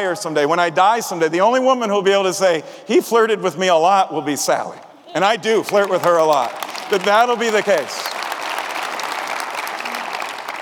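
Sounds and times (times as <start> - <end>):
speech: 0.0 - 8.2
audience clapping: 5.4 - 10.5.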